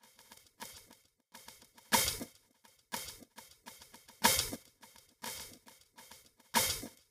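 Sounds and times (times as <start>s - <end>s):
drum: 1.4s - 2.3s, 2.9s - 7.1s.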